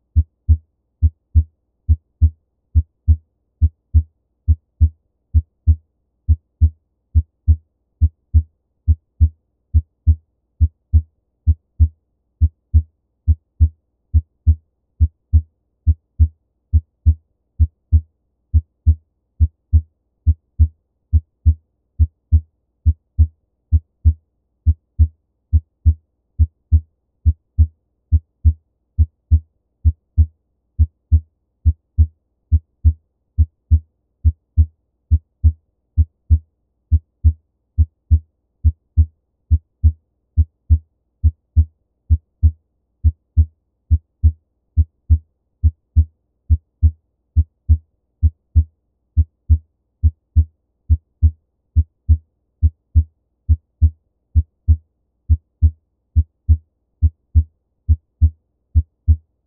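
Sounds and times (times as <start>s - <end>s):
single S2 heart sound through stethoscope diaphragm on supine patient: 0.2s - 59.3s.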